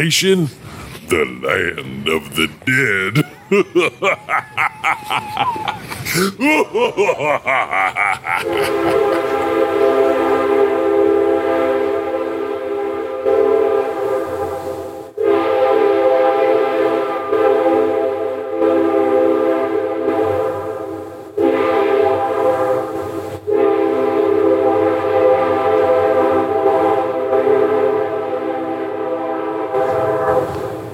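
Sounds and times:
speech: 0:00.0 - 0:09.4
laughter: 0:01.1 - 0:09.7
train horn blasts: 0:08.5 - 0:30.9.

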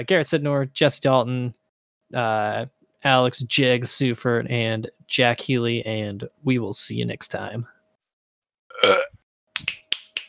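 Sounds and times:
speech: 0:00.0 - 0:07.7, 0:08.7 - 0:09.2
loud burp: 0:08.7 - 0:09.2
sharp snapping clicks: 0:09.6 - 0:10.2.

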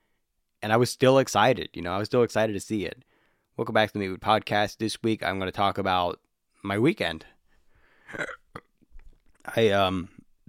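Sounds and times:
speech: 0:00.6 - 0:07.3, 0:08.1 - 0:08.4, 0:09.5 - 0:10.2
loud low buzzing burp: 0:08.1 - 0:08.8
throaty gulping noises: 0:08.1 - 0:09.5.

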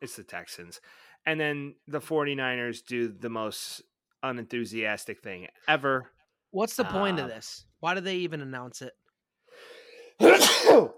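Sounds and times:
speech: 0:00.0 - 0:09.0, 0:09.6 - 0:10.9
person sneezing: 0:10.2 - 0:10.9.

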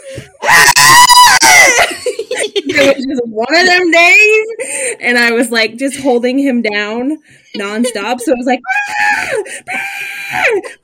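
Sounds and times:
screaming goat toy being squeezed: 0:00.4 - 0:01.8
laughter: 0:01.5 - 0:03.2, 0:07.6 - 0:10.8
speech: 0:02.8 - 0:10.8.

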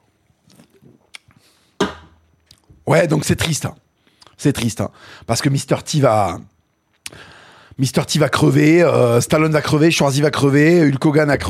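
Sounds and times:
person sipping a drink: 0:00.4 - 0:01.4
speech: 0:02.9 - 0:06.5, 0:07.1 - 0:11.4.

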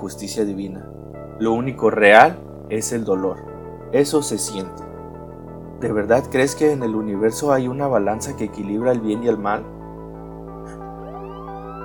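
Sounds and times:
speech: 0:00.0 - 0:04.9, 0:05.8 - 0:09.8
police car sirens wailing as patrol cars surround a house: 0:10.8 - 0:11.8.

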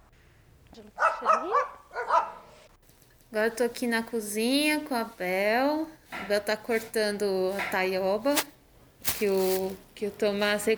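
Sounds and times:
dogs barking: 0:01.0 - 0:02.5
speech: 0:03.4 - 0:08.5, 0:09.2 - 0:10.7.

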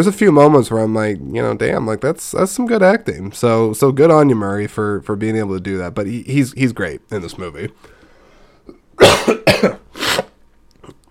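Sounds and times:
speech: 0:00.0 - 0:07.9, 0:09.0 - 0:10.1
harsh raspy coughs: 0:09.0 - 0:10.4.

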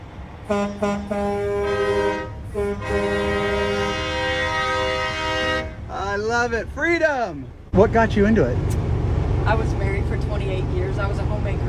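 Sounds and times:
news bus air horn blaring: 0:00.4 - 0:05.9
speech: 0:00.5 - 0:01.6, 0:06.3 - 0:08.8, 0:09.5 - 0:11.6.

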